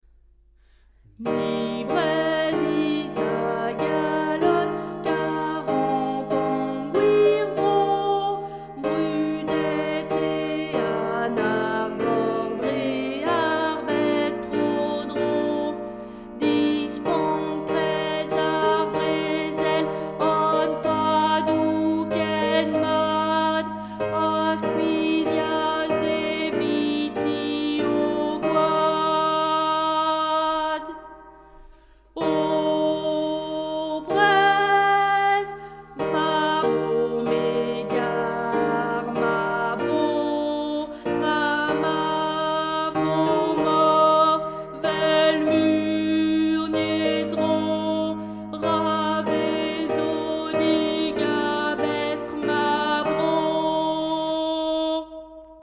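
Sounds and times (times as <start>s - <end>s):
alto voices singing: 1.2s - 55.6s.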